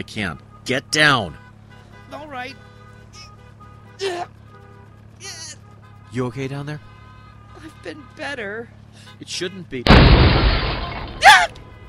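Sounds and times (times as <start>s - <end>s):
speech: 0.0s - 1.4s, 2.3s - 2.7s, 4.0s - 4.4s, 6.1s - 6.9s, 7.6s - 11.0s
low rumble of road noise: 0.0s - 11.8s
car window glass shattered by a bullet: 9.9s - 11.5s.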